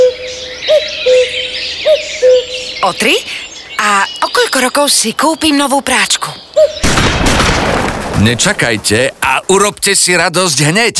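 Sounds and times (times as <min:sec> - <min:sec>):
cuckoo calling: 0:00.0 - 0:07.0
speech: 0:02.8 - 0:03.3, 0:03.9 - 0:06.9, 0:08.2 - 0:10.9.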